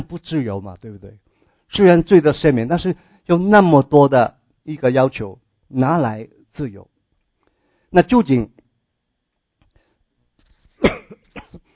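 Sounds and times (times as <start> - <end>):
speech: 0.0 - 6.9, 7.9 - 8.6
person coughing from an itchy throat: 10.8 - 11.7.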